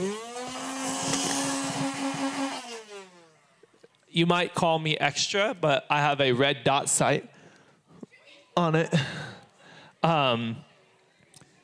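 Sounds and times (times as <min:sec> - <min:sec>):
toy foam blaster flywheel motor revving: 0:00.0 - 0:03.4
speech: 0:04.2 - 0:07.3, 0:08.6 - 0:09.2, 0:10.0 - 0:10.7.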